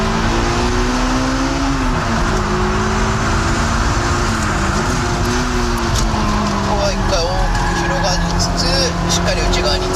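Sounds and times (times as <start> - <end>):
car engine accelerating around a race track with its rear sliding: 0.0 - 9.9.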